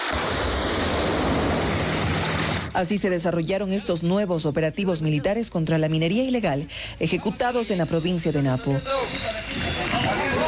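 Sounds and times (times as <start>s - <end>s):
loud explosion roar in the jungle: 0.0s - 2.8s
speech: 2.8s - 10.2s.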